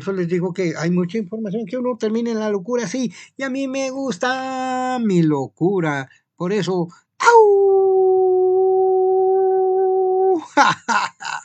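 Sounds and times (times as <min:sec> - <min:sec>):
speech: 0:00.0 - 0:08.6, 0:10.5 - 0:11.4
human voice imitating a howl: 0:07.2 - 0:10.5.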